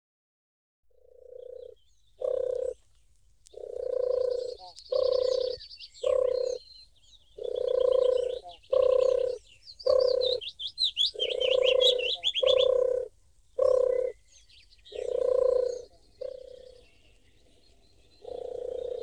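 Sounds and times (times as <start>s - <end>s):
wood pigeon cooing: 0.9s - 2.8s, 3.5s - 6.6s, 7.4s - 14.2s, 14.9s - 17.1s, 18.0s - 19.0s
small birds chirping and twittering: 1.1s - 19.0s.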